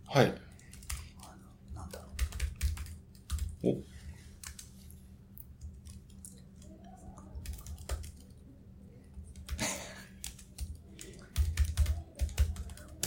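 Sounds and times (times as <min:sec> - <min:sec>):
low steady hum: 0:00.0 - 0:13.0
speech: 0:00.1 - 0:00.4, 0:03.6 - 0:03.9
typing on a computer keyboard: 0:00.5 - 0:03.6, 0:04.4 - 0:04.7, 0:05.6 - 0:08.4, 0:09.2 - 0:13.0.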